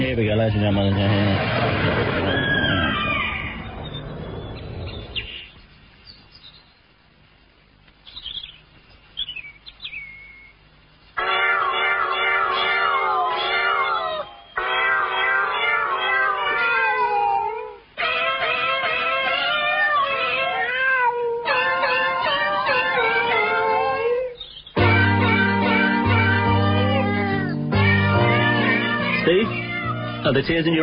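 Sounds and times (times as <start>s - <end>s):
speech: 0.1s - 2.6s, 30.4s - 30.8s
cat meows sung as a rock song melody: 11.2s - 30.3s.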